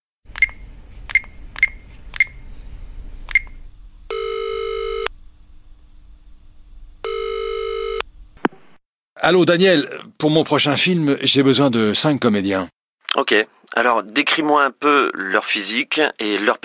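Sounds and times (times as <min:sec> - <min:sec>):
telephone key-press clicks: 0:00.3 - 0:02.4, 0:03.3 - 0:03.6
buzzing ring tones of an outgoing telephone call: 0:03.3 - 0:05.1, 0:07.0 - 0:08.0
speech: 0:09.2 - 0:16.6.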